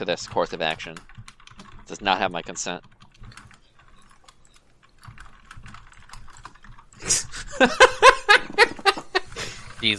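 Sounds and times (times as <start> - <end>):
speech: 0.0 - 1.1, 1.9 - 2.9, 7.6 - 8.7, 9.8 - 9.9
typing on a computer keyboard: 0.0 - 8.3
rhythmic laughter: 7.0 - 9.8.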